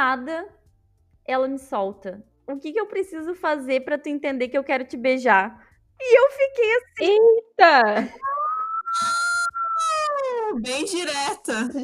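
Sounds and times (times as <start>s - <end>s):
speech: 0.0s - 0.6s, 1.3s - 8.3s, 10.5s - 11.8s
voice imitating a wailing ambulance siren: 8.1s - 10.8s
laughter: 9.0s - 11.8s.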